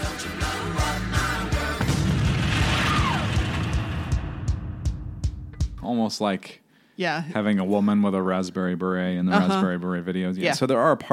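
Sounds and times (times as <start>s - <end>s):
music: 0.0s - 5.9s
loud booming explosion with rumbling roar: 1.8s - 5.5s
speech: 5.9s - 11.1s.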